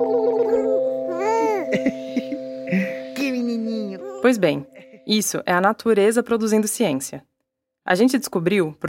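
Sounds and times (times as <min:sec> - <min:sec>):
high sing-song voice cooing exaggerated baby talk at a baby: 0:00.4 - 0:01.7, 0:03.2 - 0:04.6
speech: 0:04.3 - 0:07.3, 0:07.9 - 0:08.8.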